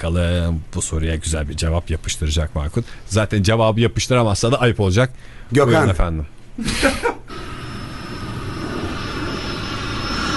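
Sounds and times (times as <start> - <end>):
speech: 0.0 - 7.2
airplane passing with engine roar: 7.3 - 10.3.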